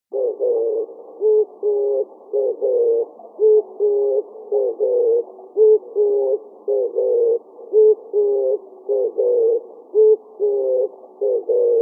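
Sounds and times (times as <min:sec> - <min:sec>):
oriental turtle dove calling: 0:00.0 - 0:11.8.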